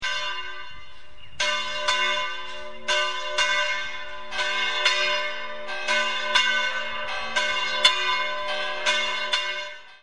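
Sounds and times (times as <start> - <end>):
church bells ringing in Segovia: 0.0 - 10.0.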